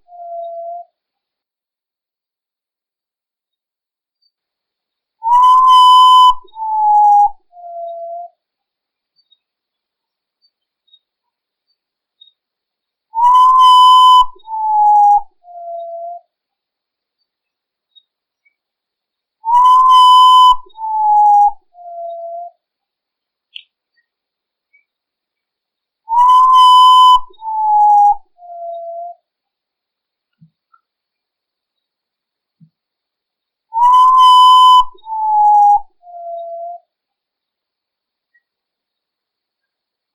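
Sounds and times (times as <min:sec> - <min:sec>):
Urutau call: 0:05.2 - 0:08.3, 0:13.1 - 0:16.3, 0:19.5 - 0:22.5, 0:26.1 - 0:29.2, 0:33.7 - 0:36.9.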